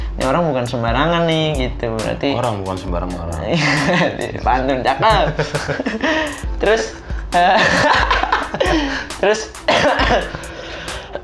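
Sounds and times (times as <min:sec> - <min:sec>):
speech: 0:00.3 - 0:10.5
laughter: 0:03.5 - 0:06.4, 0:07.2 - 0:09.1
harsh cough: 0:09.7 - 0:10.5.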